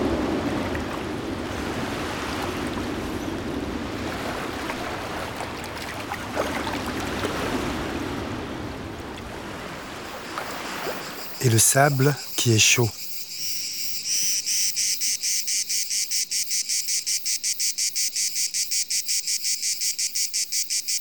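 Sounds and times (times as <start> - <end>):
ocean waves with rising tide: 0.0 - 13.0
speech: 11.4 - 13.0.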